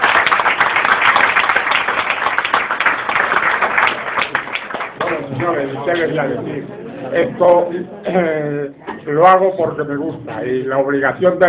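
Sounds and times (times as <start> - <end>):
diners clapping at a bullfighting club dinner: 0.0 - 5.7
speech: 5.8 - 11.4.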